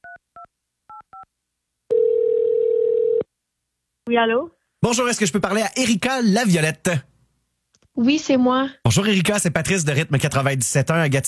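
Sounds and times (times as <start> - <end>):
loud steady telephone tone: 1.9 - 3.3
speech: 4.1 - 7.1, 8.0 - 11.2.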